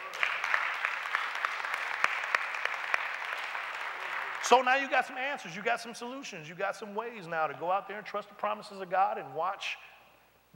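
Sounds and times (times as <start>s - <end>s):
audience applause: 0.0s - 4.6s
speech: 4.5s - 9.9s.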